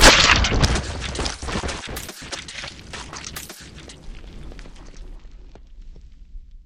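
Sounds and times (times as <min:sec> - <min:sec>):
anomaly body tearing: 0:00.0 - 0:04.0.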